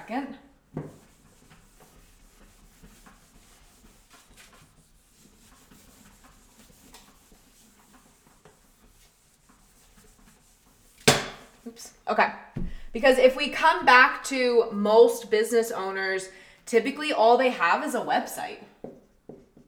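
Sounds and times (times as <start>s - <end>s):
speech: 0.1s - 0.8s, 11.8s - 12.4s, 13.0s - 18.6s
eraser rubbing writing off a board: 0.8s - 11.1s.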